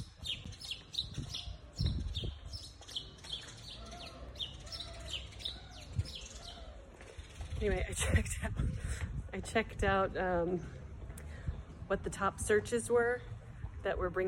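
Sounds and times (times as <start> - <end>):
several birds chirping and squawking in an agitated flurry: 0.0 - 8.2
speech: 7.6 - 10.8, 11.9 - 14.2.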